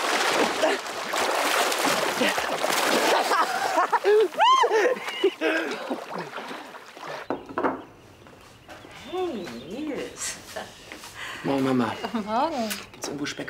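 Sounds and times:
energetic splashing in water: 0.0 - 7.5
speech: 2.2 - 2.7, 4.0 - 6.6, 11.4 - 13.4
excited people shouting and laughing: 3.0 - 6.1.

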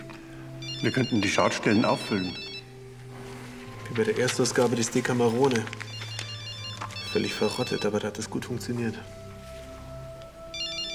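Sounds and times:
mobile phone ringtone with warbling electronic tones: 0.4 - 2.9, 5.0 - 8.4, 10.4 - 10.9
speech: 0.8 - 2.5, 3.9 - 5.9, 7.1 - 9.2.

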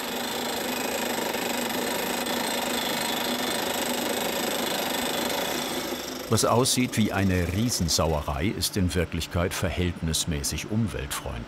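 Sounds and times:
dry drilling rig engine drone: 0.0 - 11.4
speech: 6.3 - 11.4.

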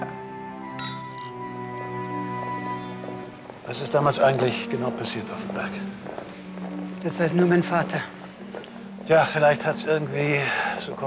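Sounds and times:
glasses clinking in a toast: 0.0 - 1.5
speech: 3.7 - 6.4, 7.0 - 8.2, 9.1 - 11.0.

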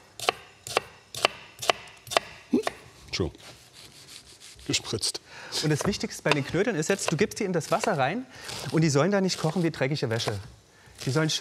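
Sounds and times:
knife dicing a red onion: 0.2 - 2.8, 5.6 - 8.8, 9.4 - 11.2
speech: 3.2 - 3.6, 4.7 - 11.4.

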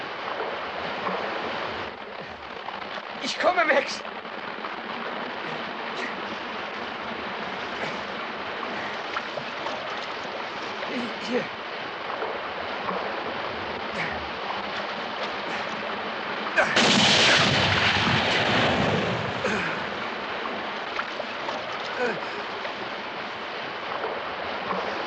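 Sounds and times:
steady hissing background: 0.0 - 25.0
speech: 3.2 - 4.1, 11.3 - 11.6
gunshot: 16.6 - 19.6.

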